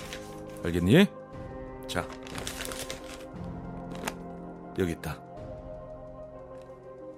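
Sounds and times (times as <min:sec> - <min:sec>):
paper bag of broken yeot crinkling as it is handed over: 0:00.0 - 0:00.6, 0:02.0 - 0:04.2
speech: 0:00.6 - 0:01.2, 0:01.9 - 0:02.2, 0:04.8 - 0:05.2.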